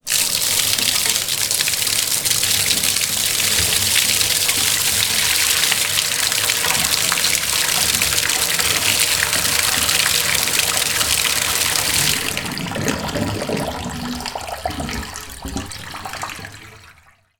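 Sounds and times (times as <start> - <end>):
household bath water tap running: 0.0 - 17.2
bath water draining: 0.0 - 17.3.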